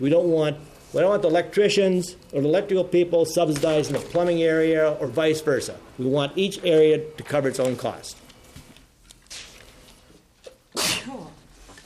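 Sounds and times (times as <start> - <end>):
speech: 0.0 - 8.2
sneeze: 10.8 - 11.4.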